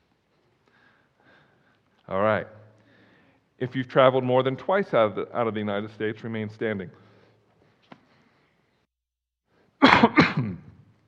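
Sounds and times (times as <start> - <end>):
speech: 2.1 - 2.6, 3.6 - 7.0
person coughing: 9.8 - 10.9.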